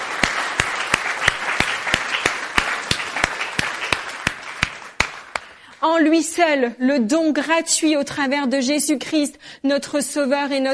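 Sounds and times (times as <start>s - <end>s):
congregation applauding during a church service: 0.0s - 5.6s
speech: 5.9s - 10.7s.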